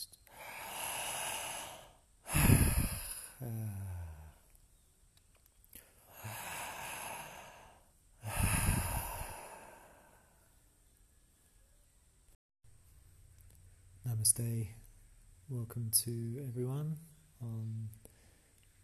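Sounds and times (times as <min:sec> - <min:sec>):
slow breathy exhales during guided breathing practice: 0:00.3 - 0:04.4, 0:05.8 - 0:10.6
speech: 0:14.2 - 0:14.8, 0:15.5 - 0:18.2.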